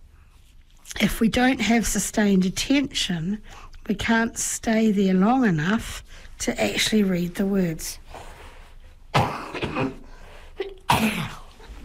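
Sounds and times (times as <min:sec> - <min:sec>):
speech: 0:01.0 - 0:08.0
person coughing harshly: 0:09.2 - 0:11.6.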